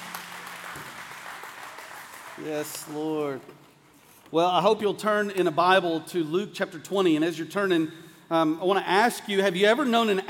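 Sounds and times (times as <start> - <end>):
crowd applauding: 0.0 - 3.4
speech: 2.4 - 3.6, 4.3 - 10.2.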